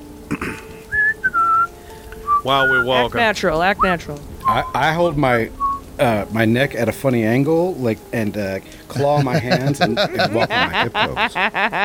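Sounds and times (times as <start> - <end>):
person whistling a short tune of three notes: 0.9 - 3.1, 4.4 - 4.8, 5.6 - 5.8
speech: 2.4 - 11.8
soft breathy sounds: 8.6 - 9.0
laughter: 8.9 - 11.8.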